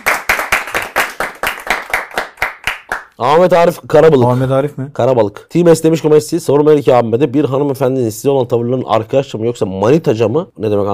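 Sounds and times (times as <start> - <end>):
applause of brisk hand claps: 0.0 - 3.2
speech: 3.2 - 10.9.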